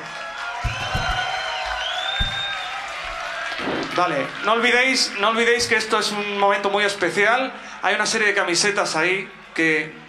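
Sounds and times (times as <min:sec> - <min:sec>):
audience clapping and cheering: 0:00.0 - 0:07.2, 0:08.2 - 0:10.0
whistles and whoops: 0:00.1 - 0:03.8
low thumps: 0:00.6 - 0:03.9
speech: 0:04.0 - 0:10.0.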